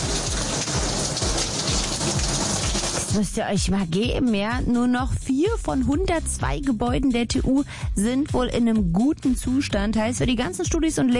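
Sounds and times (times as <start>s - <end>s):
water pouring like rain inside a leaking university physics building: 0.0s - 3.2s
speech: 3.1s - 11.1s.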